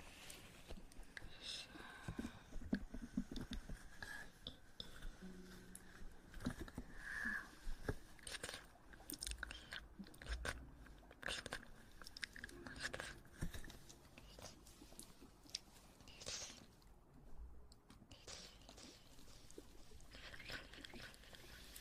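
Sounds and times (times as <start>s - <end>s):
soft steady hiss: 0.0s - 21.8s
wet chewing: 8.2s - 16.9s, 17.7s - 21.8s.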